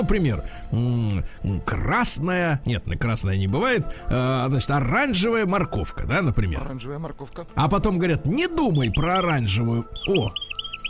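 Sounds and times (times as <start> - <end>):
speech: 0.0 - 10.6
pet rat squeaking: 8.5 - 10.8.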